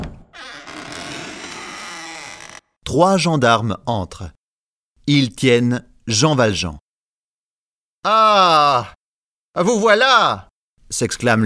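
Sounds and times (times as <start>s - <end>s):
door swinging open with a long loud creak: 0.0s - 2.7s
speech: 2.9s - 4.4s, 5.1s - 6.8s, 8.0s - 9.0s, 9.6s - 11.4s.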